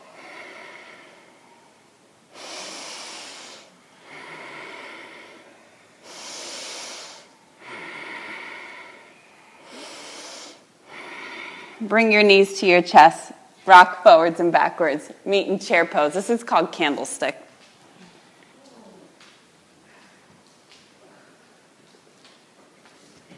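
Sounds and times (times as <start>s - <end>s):
slow deep ujjayi breaths during a yoga session: 0.0s - 12.1s
speech: 11.8s - 17.4s.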